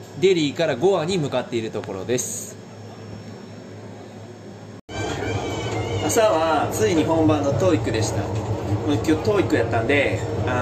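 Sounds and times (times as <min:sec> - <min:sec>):
speech: 0:00.2 - 0:02.6, 0:06.1 - 0:10.6
rumble inside a moving train with low drone and hiss: 0:04.9 - 0:10.6.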